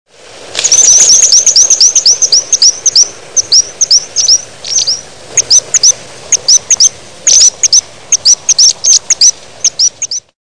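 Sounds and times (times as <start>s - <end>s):
fig parakeet chirping: 0.6s - 10.3s.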